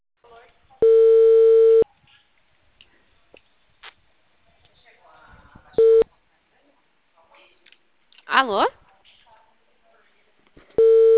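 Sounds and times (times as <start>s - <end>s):
faint low noises: 0.2s - 11.1s
steady electronic telephone tone on an unanswered call: 0.8s - 1.8s, 5.8s - 6.0s, 10.8s - 11.1s
speech: 8.4s - 8.8s.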